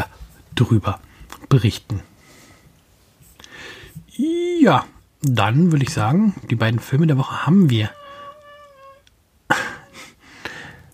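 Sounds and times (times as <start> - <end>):
speech: 0.6 - 2.1, 4.2 - 8.0
male cat squealing and meowing: 7.7 - 9.1.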